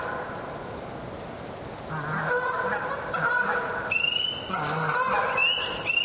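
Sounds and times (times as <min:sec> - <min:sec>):
Canada geese honking overhead: 0:01.9 - 0:06.0.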